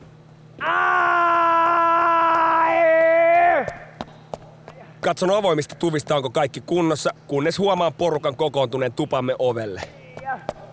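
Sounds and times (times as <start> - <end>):
long loud scream: 0.6 - 3.8
speech: 5.0 - 10.0.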